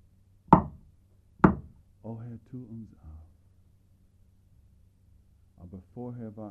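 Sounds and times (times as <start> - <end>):
knocking on a door: 0.5 - 0.8, 1.4 - 1.8
speech: 2.1 - 3.3, 5.6 - 6.4.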